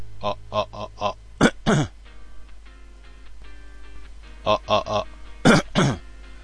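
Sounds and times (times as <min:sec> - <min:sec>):
person coughing deliberately to test recording level: 0:00.8 - 0:02.0, 0:04.8 - 0:06.1.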